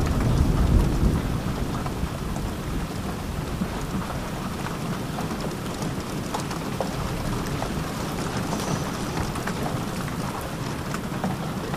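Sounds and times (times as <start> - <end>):
deep rumble of thunder over a mountain hut: 0.0 - 11.7
steady dense rain pattering around a mountain hut: 0.0 - 11.7.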